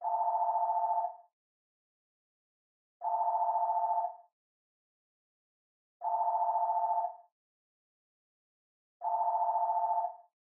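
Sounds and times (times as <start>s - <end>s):
telephone ringtone: 0.0s - 1.3s, 3.0s - 4.3s, 6.0s - 7.3s, 9.0s - 10.3s.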